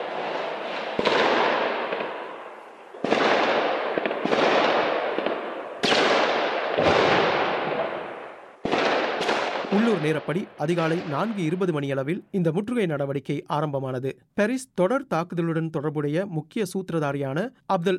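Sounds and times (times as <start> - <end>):
loud explosions with rumbling echo: 0.0 - 2.4, 3.0 - 11.8
gunfire bangs: 0.0 - 11.6
speech: 10.0 - 17.9.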